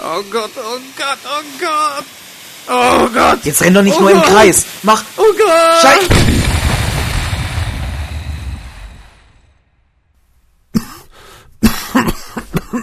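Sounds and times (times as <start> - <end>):
speech: 0.1 - 6.3
Chinese firecracker explosion: 6.0 - 9.7
harsh coughing: 10.7 - 12.8.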